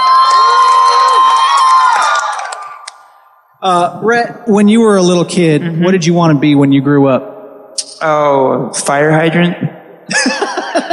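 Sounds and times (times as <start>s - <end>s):
children in a crowd at a live event cheering and shouting: 0.0s - 2.8s
speech: 3.6s - 7.3s, 8.0s - 10.4s
laughter: 10.1s - 10.9s.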